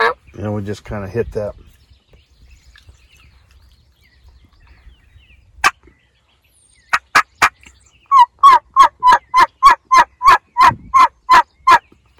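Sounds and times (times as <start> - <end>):
speech: 0.4 - 1.6
wild turkey raspy gobble: 6.9 - 11.8.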